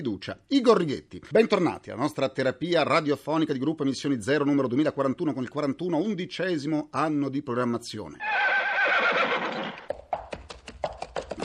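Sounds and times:
speech: 0.0 - 8.6
horse letting out a loud quavering whinny: 8.2 - 9.9
sharp hoof clops on a hard surface: 9.4 - 11.4.

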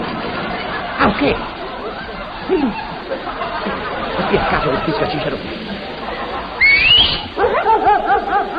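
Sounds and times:
laughter: 0.1 - 8.5
speech: 1.2 - 1.5, 4.3 - 5.7
rising whistle: 6.6 - 7.3.

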